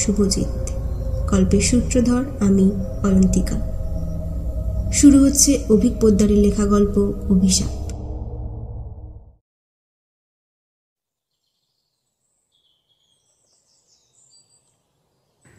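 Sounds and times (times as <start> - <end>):
speech: 0.0 - 3.8, 4.9 - 7.8
faint high chirping of birds in the morning: 0.0 - 7.9, 11.4 - 15.5
brief loud low burst: 0.0 - 9.4.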